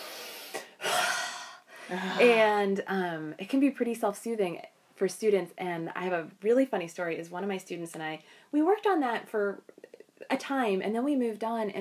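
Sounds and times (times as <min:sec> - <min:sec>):
person taking a deep breath and exhaling: 0:00.0 - 0:02.3
speech: 0:01.9 - 0:11.7.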